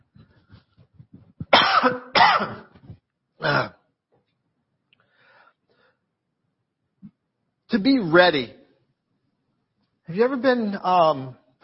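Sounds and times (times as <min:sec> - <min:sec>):
person coughing: 0:01.4 - 0:02.8, 0:03.4 - 0:03.8
speech: 0:01.8 - 0:02.6, 0:07.8 - 0:08.6, 0:10.1 - 0:11.4
faint breathing: 0:05.0 - 0:06.1.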